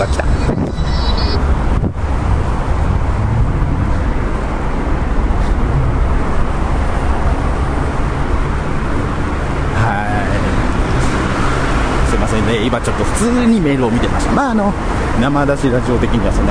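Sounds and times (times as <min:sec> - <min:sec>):
wind buffeting the microphone: 0:00.0 - 0:09.5
roadside car traffic roar: 0:00.0 - 0:16.4
speech: 0:12.7 - 0:16.4.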